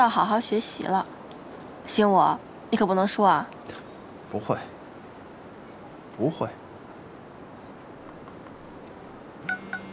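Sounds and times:
speech: 0.0 - 1.2, 1.8 - 4.8, 6.2 - 6.6
electronic phone beeps on a bus: 9.4 - 9.9.

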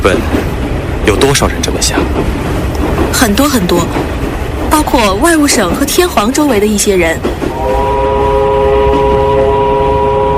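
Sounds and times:
speech: 0.0 - 0.4, 1.0 - 8.2
train speeding across a northeastern plain: 0.0 - 10.3
train sounding a long multi-note whistle: 7.5 - 10.3.

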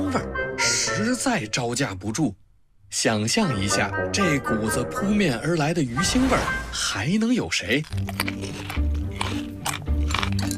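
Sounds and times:
speech: 0.1 - 0.4, 1.0 - 9.6
loud crunchy chewing of a bitter herb: 7.5 - 10.5.

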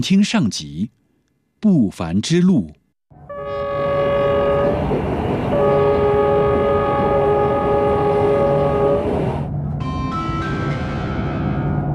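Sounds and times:
speech: 0.0 - 1.0, 1.6 - 2.8
passenger train horn blaring in long blasts: 3.1 - 9.5
passenger train running on rails approaching station: 3.1 - 11.9.

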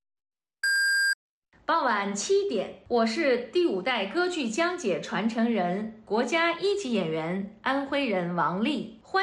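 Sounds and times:
radio hourly time signal beeps: 0.6 - 1.2
speech: 1.7 - 9.2.

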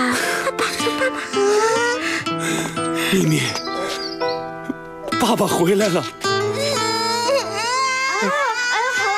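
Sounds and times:
baby girl crying: 0.2 - 2.6, 6.3 - 9.1
speech: 3.1 - 3.6, 5.2 - 6.3.

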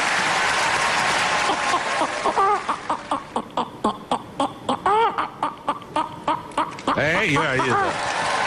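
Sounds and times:
applause: 0.0 - 3.1, 7.7 - 8.4
laughter: 4.8 - 8.4
speech: 7.2 - 8.2.

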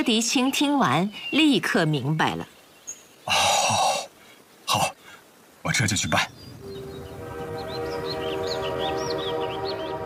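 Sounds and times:
speech: 0.0 - 2.6, 3.3 - 3.8, 5.7 - 6.5
high chirping squeals: 6.0 - 10.0
passenger train from Tianjin to Beiping rumbling: 6.6 - 10.0.

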